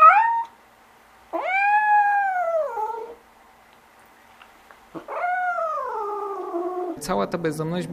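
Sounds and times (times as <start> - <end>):
cats yowling during mating season in March in Poznań: 0.0 - 0.6, 1.3 - 3.2, 5.0 - 7.0
speech: 7.0 - 7.9.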